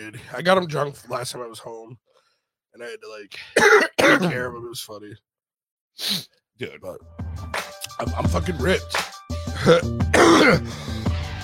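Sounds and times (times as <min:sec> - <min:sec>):
speech: 0:00.1 - 0:02.1, 0:02.8 - 0:05.3, 0:06.0 - 0:11.0
person coughing after smoking: 0:03.5 - 0:04.5, 0:09.6 - 0:10.8
person clearing throat: 0:03.6 - 0:04.5, 0:09.6 - 0:10.8.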